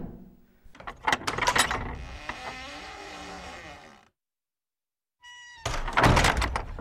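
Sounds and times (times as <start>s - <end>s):
door creaking on its hinges: 0.7s - 4.1s, 5.2s - 6.7s
door thudding shut: 5.6s - 6.7s.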